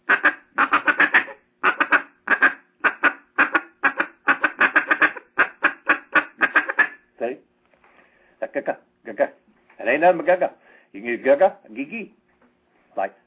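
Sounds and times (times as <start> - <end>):
duck call imitating quacking: 0.0 - 7.0
speech: 8.6 - 9.3, 9.9 - 12.2, 13.0 - 13.2.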